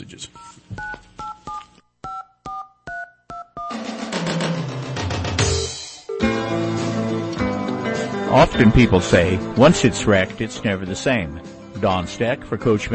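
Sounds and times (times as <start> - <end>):
speech: 0.1 - 0.9, 8.3 - 12.9
touch-tone telephone keypad beeps: 0.4 - 3.8
music: 2.5 - 12.9.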